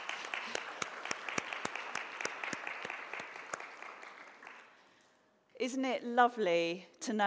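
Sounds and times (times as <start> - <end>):
audience applause: 0.0 - 4.8
sharp individual claps: 0.0 - 4.8
speech: 5.6 - 7.2.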